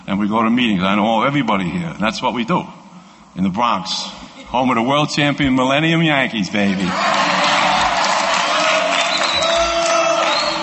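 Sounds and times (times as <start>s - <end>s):
speech: 0.1s - 2.8s, 3.4s - 7.3s
large audience booing: 6.8s - 10.6s
scattered shouts from the audience: 6.9s - 10.6s.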